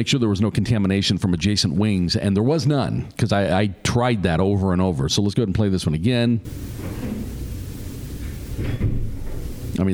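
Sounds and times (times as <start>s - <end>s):
speech: 0.0s - 7.1s, 9.8s - 9.9s
room door in a single-floor facility wing swinging shut: 6.8s - 7.4s, 8.3s - 9.6s.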